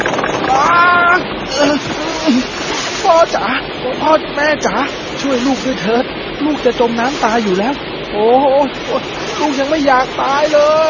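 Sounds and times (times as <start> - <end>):
cyclone winds roaring against a sailing junk on the ocean: 0.0 - 10.8
sailing junk creaking: 0.0 - 10.8
speech: 3.2 - 10.8.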